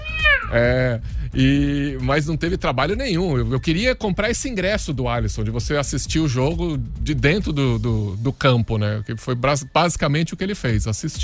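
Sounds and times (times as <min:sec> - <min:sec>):
cat meowing: 0:00.0 - 0:00.6
speech: 0:00.5 - 0:11.2.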